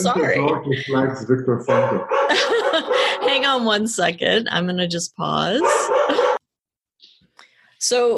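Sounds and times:
laughter: 0:00.0 - 0:03.4
speech: 0:00.0 - 0:06.2, 0:07.8 - 0:08.1
dog barking and yipping excitedly: 0:01.7 - 0:03.6, 0:05.6 - 0:06.4.

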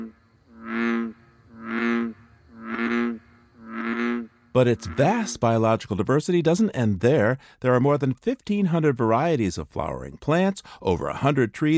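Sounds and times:
bullfrog croaking deeply: 0:00.0 - 0:05.6
speech: 0:04.6 - 0:11.7.

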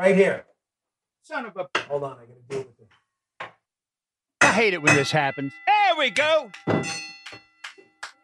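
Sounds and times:
speech: 0:00.0 - 0:00.5, 0:01.2 - 0:02.7, 0:04.6 - 0:07.2
gavel striking a small bell: 0:04.4 - 0:08.2.

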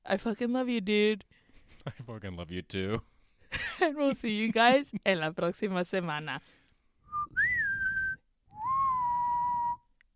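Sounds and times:
speech: 0:00.1 - 0:06.6
person singing a high piercing whistle-tone: 0:07.2 - 0:09.9.

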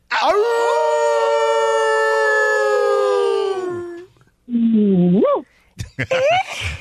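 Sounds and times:
male caller imitating quick wolf yips: 0:00.1 - 0:04.1
male caller on a call-in line imitating a wolf howl: 0:00.1 - 0:04.1
laughter: 0:05.8 - 0:06.7.

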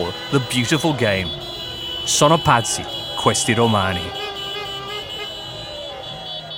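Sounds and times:
speech: 0:00.0 - 0:04.3
small car horn honking: 0:00.0 - 0:06.5.

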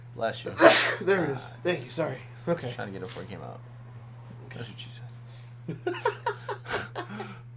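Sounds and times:
speech: 0:00.2 - 0:03.8, 0:04.5 - 0:07.4
single sharp sneeze: 0:00.6 - 0:01.1
laughter: 0:05.7 - 0:07.4.

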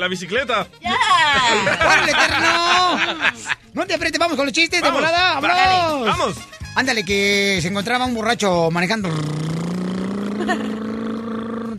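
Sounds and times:
speech: 0:00.0 - 0:09.6, 0:10.5 - 0:10.8
laughter: 0:01.2 - 0:03.6, 0:10.2 - 0:11.0
motorcycle engine revving: 0:09.0 - 0:11.7.

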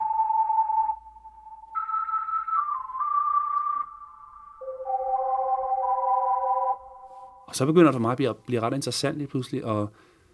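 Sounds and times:
breathy flute-like sampled keyboard tone with echo and Leslie effect: 0:00.0 - 0:07.9
speech: 0:07.5 - 0:10.1.

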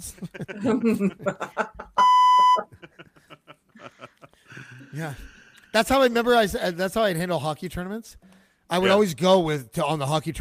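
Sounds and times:
speech: 0:00.0 - 0:01.7, 0:05.0 - 0:10.3
laughter: 0:00.0 - 0:02.0, 0:02.6 - 0:05.6
censor bleep tone: 0:02.0 - 0:02.7.

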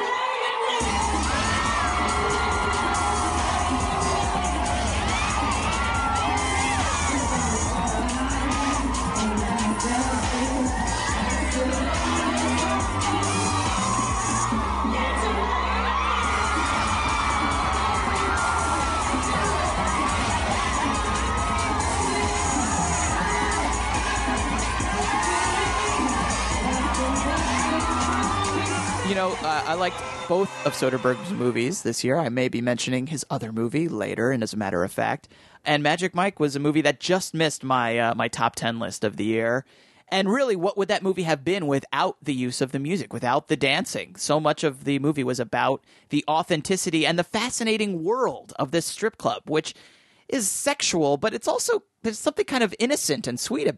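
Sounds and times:
packed crowd of women shrieking and cheering with excitement: 0:00.0 - 0:31.6
speech: 0:29.7 - 0:53.7.

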